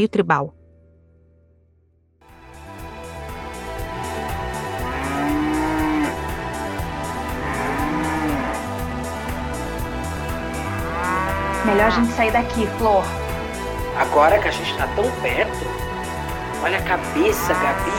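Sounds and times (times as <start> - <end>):
speech: 0.0 - 0.6, 11.6 - 13.2, 14.0 - 15.8, 16.6 - 17.9
loud pounding electronic music with a steady beat: 3.1 - 14.2, 15.0 - 17.9
drawn-out cow moos: 4.7 - 6.3, 7.2 - 8.8, 10.6 - 12.4, 17.0 - 17.9.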